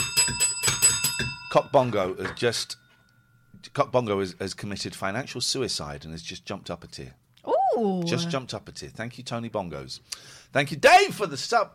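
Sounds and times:
small hand bell ringing: 0:00.0 - 0:01.6
speech: 0:01.5 - 0:02.8, 0:03.6 - 0:07.2, 0:07.8 - 0:11.7
people talking loudly: 0:07.5 - 0:08.4.

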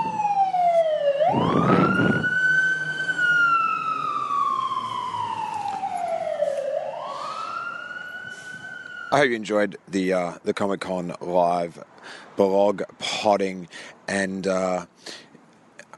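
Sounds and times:
fire truck siren wailing while passing by: 0:00.0 - 0:09.3
speech: 0:09.2 - 0:15.3.

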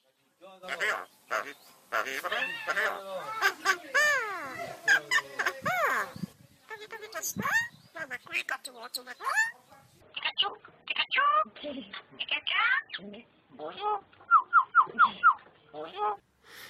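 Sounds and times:
common myna chattering, gurgling and whistling: 0:00.7 - 0:11.5, 0:14.1 - 0:16.2.

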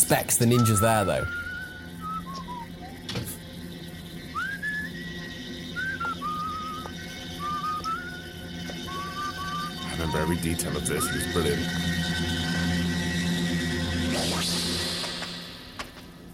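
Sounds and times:
speech: 0:00.0 - 0:01.4, 0:10.0 - 0:12.3
steady hum: 0:00.0 - 0:16.3
person whistling a wandering tune: 0:00.4 - 0:03.4, 0:04.3 - 0:11.6.

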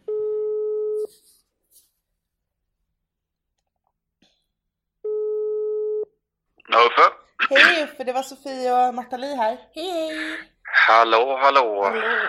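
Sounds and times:
electronic ringback tone of an outgoing phone call: 0:00.1 - 0:01.0, 0:05.1 - 0:06.1
speech: 0:06.8 - 0:12.2.

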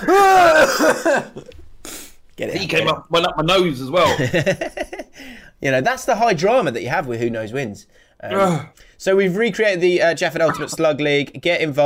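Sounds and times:
laughter: 0:00.0 - 0:01.5, 0:04.0 - 0:05.2
speech: 0:00.8 - 0:01.6, 0:02.4 - 0:11.8
person spluttering coughs with wheezing tone: 0:10.5 - 0:10.8.

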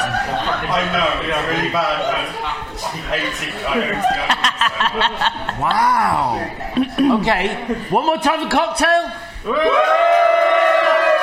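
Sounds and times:
laughter: 0:00.0 - 0:08.1
speech: 0:00.8 - 0:10.1
live audience cheering to cast a vote: 0:09.5 - 0:11.2.

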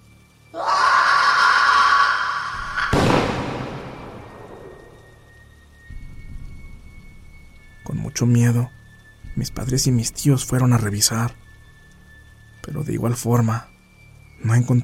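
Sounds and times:
heavy rain during a strong storm at night: 0:00.3 - 0:07.0
sharp thunderclap during a night storm: 0:02.6 - 0:05.0
speech: 0:08.2 - 0:08.8, 0:09.4 - 0:11.4, 0:12.8 - 0:13.7, 0:14.4 - 0:14.8.

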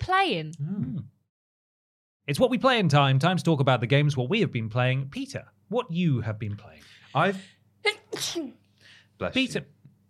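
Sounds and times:
speech: 0:00.1 - 0:00.8, 0:02.3 - 0:08.6, 0:09.2 - 0:09.8
person sneezing: 0:08.1 - 0:08.6.

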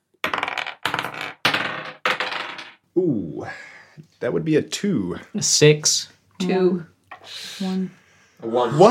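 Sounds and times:
dice rolling on a table during a tabletop role-playing game dexterity check: 0:00.2 - 0:02.8
speech: 0:03.0 - 0:08.8.

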